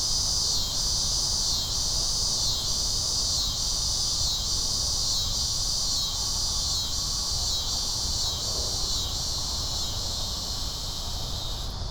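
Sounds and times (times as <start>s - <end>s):
cicada buzz: 0.0s - 11.8s.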